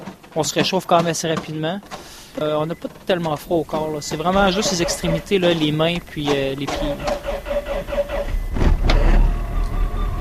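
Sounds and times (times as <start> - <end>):
car engine cranking and starting in cold of minus 15 to minus 20 degrees: 0.0 - 10.1
speech: 0.4 - 7.2.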